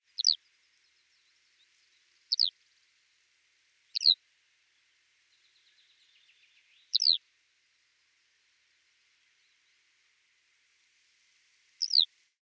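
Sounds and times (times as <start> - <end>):
Eurasian Skylark Alauda arvensis: 0.0 - 2.6, 3.9 - 4.2, 5.4 - 7.2, 11.8 - 12.1.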